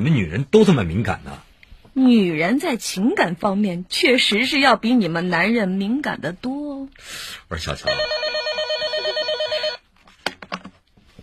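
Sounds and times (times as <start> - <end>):
speech: 0.0 - 1.4, 2.0 - 8.2
telephone ringing with a rapid warbling trill: 7.8 - 9.8.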